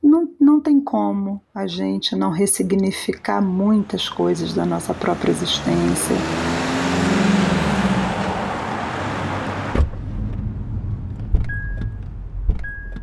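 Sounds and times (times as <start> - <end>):
speech: 0.6 - 6.6
road and engine rumble inside a ride-hailing car: 3.3 - 13.0
thump in a car: 9.7 - 12.8.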